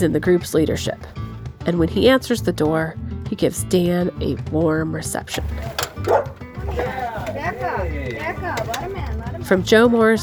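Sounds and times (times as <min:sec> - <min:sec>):
speech: 0:00.0 - 0:06.9, 0:09.5 - 0:10.2
people talking and greeting each other: 0:00.0 - 0:10.2
dog barking at the door of a mobile home: 0:06.0 - 0:06.9.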